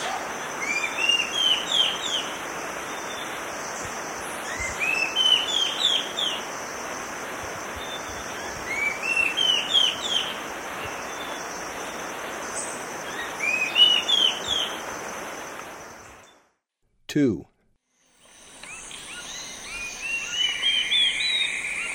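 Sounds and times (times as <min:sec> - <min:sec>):
olivaceous woodcreeper song in the eastern lowlands of South America: 0:00.0 - 0:06.6, 0:07.6 - 0:11.5, 0:13.0 - 0:14.9, 0:18.2 - 0:21.9
high insect drone: 0:00.0 - 0:16.2, 0:18.2 - 0:21.9
speech: 0:17.2 - 0:17.5.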